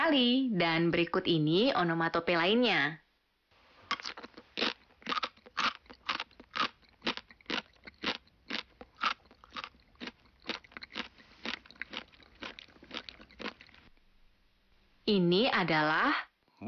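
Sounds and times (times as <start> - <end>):
speech: 0.1 - 3.0, 15.1 - 16.6
crunchy chewing of hard food: 3.8 - 14.0.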